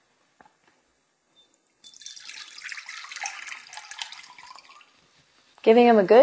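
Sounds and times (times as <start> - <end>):
faint water drips: 1.4 - 5.6
water pouring and draining through a screened sprouting jar: 1.6 - 5.1
speech: 5.6 - 6.2.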